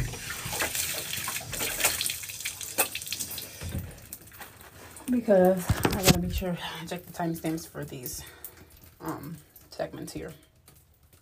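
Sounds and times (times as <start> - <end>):
running tap water: 0.0 - 11.2
speech: 5.1 - 8.4, 9.0 - 10.5.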